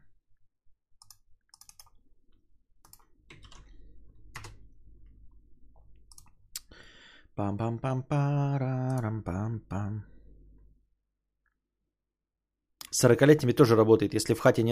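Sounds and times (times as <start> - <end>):
typing on a computer keyboard: 1.0 - 2.0, 2.8 - 4.7, 5.7 - 6.4
speech: 7.4 - 10.2, 13.0 - 14.7.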